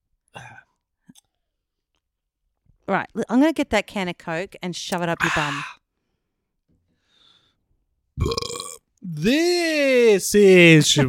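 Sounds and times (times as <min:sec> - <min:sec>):
speech: 0:02.9 - 0:05.8, 0:08.2 - 0:11.0
loud burp: 0:08.2 - 0:08.9.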